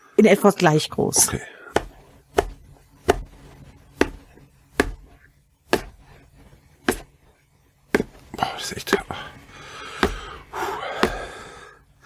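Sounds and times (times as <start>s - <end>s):
speech: 0.2s - 1.6s
knife chopping food finely into small pieces on a board: 1.7s - 6.2s, 6.8s - 7.2s, 7.9s - 8.3s, 8.9s - 9.2s, 9.9s - 11.4s.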